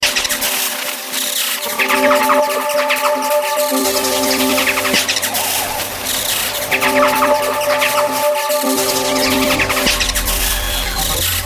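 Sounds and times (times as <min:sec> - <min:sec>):
Korg synthesizer sounds: 0:00.0 - 0:11.4.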